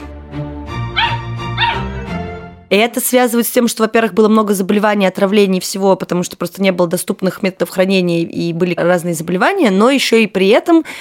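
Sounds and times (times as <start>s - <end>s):
small dog yipping and barking: 1.0s - 1.9s
speech: 2.7s - 10.9s.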